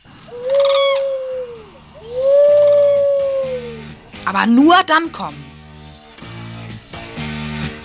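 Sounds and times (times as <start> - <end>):
human voice imitating owl hoots as a signal: 0.0 - 4.0
speech: 4.3 - 5.4.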